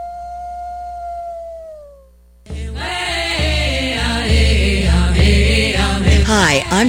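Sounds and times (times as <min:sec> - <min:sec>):
lone wolf howling: 0:00.0 - 0:02.1
loud music: 0:02.5 - 0:06.8
speech: 0:06.4 - 0:06.8.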